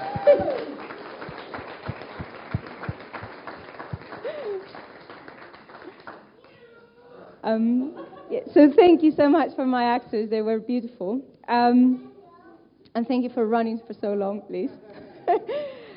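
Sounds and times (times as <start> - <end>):
small group clapping rhythmically for an actor after a performance: 0.0 - 6.6
speech: 0.2 - 0.6, 7.5 - 12.1, 13.0 - 15.6.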